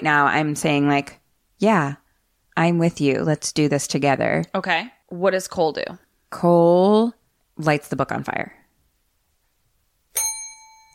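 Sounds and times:
speech: 0:00.0 - 0:02.0, 0:02.6 - 0:08.6
bell ding: 0:10.2 - 0:10.9.

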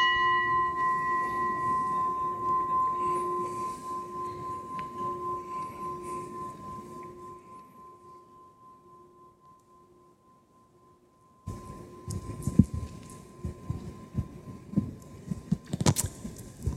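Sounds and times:
gong ringing after being struck: 0:00.0 - 0:09.7, 0:11.4 - 0:14.8.

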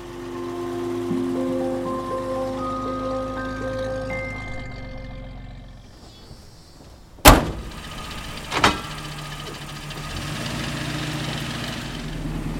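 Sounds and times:
vintage Nash car engine idling with a mechanical whine: 0:00.0 - 0:12.5
thud: 0:06.8 - 0:08.9
car door slamming: 0:07.2 - 0:09.1.

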